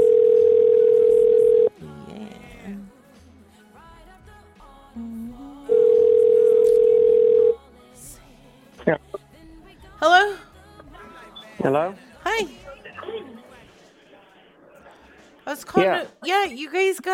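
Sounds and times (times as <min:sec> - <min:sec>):
telephone dial tone: 0:00.0 - 0:01.7, 0:05.7 - 0:07.6
speech: 0:11.7 - 0:12.6, 0:15.8 - 0:17.1.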